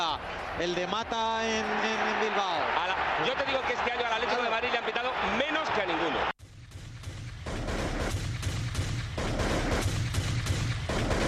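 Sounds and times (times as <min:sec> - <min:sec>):
speech: 0:00.0 - 0:06.3
gunshots: 0:07.0 - 0:11.2.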